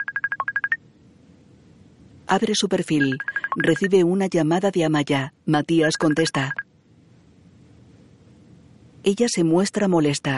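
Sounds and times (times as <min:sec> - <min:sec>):
social media notification beeps: 0:00.0 - 0:00.8, 0:02.8 - 0:03.9, 0:05.8 - 0:06.7
speech: 0:02.3 - 0:06.6, 0:09.0 - 0:10.3.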